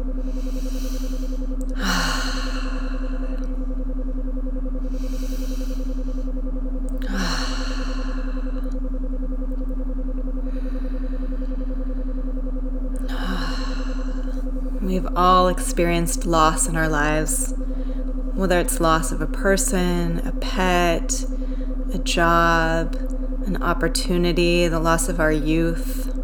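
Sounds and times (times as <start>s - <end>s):
slow deep breathing: 0.0s - 18.5s, 21.2s - 23.5s
steady low electrical hum: 0.0s - 26.2s
speech: 15.2s - 17.6s, 18.4s - 26.0s.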